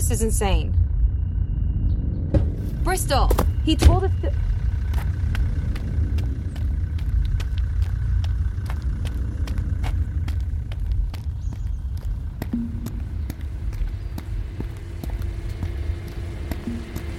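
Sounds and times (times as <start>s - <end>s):
speech: 0.1s - 0.8s, 2.8s - 4.5s
car engine running with a deep low rumble: 2.1s - 17.1s.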